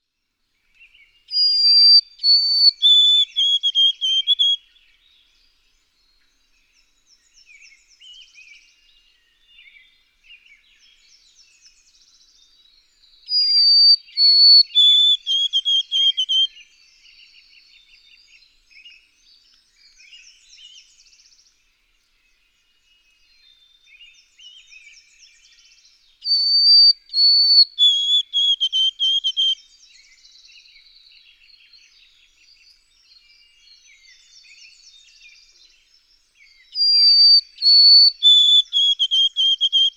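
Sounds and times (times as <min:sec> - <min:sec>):
White-throated Sparrow singing: 0:01.3 - 0:04.6, 0:13.3 - 0:16.6, 0:26.2 - 0:30.2, 0:33.4 - 0:39.9.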